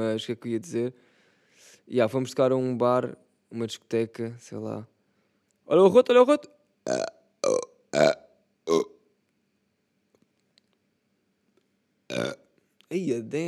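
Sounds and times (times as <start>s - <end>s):
speech: 0.0s - 4.9s, 5.7s - 7.2s, 12.2s - 13.4s
person burping: 6.9s - 9.0s, 12.1s - 12.4s.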